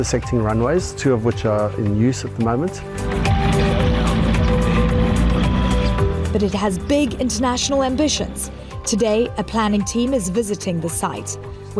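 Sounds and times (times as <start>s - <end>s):
speech: 0.0s - 3.4s, 6.3s - 11.7s
light aircraft propeller engine droning at a small airstrip: 2.8s - 8.7s.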